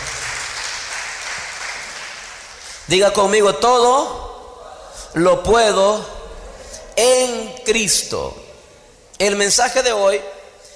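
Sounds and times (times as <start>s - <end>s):
seated church congregation applauding: 0.0s - 2.9s
speech: 2.9s - 4.2s, 5.1s - 6.2s, 7.0s - 8.4s, 9.2s - 10.3s.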